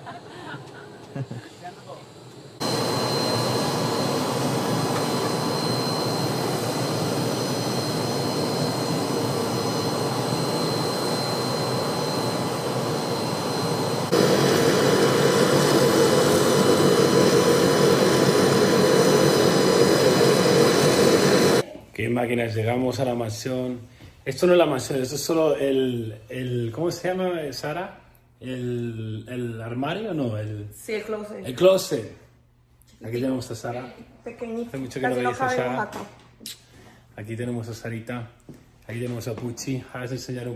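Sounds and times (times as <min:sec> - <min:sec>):
laughter: 0:00.0 - 0:01.7
speech: 0:01.2 - 0:01.6, 0:22.2 - 0:32.2, 0:33.0 - 0:36.6, 0:37.2 - 0:40.5
faint high whine: 0:01.6 - 0:21.6
jet engine roar inside an aircraft cabin: 0:02.0 - 0:21.6.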